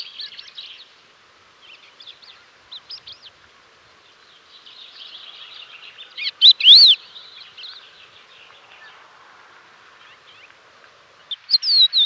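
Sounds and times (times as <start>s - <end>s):
crested lark calls: 5.2s - 7.2s.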